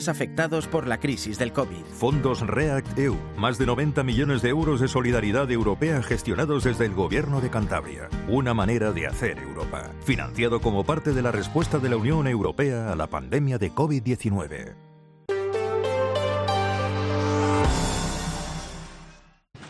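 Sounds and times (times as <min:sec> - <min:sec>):
speech: 0:00.0 - 0:14.9
sustained musical chord: 0:15.3 - 0:19.4.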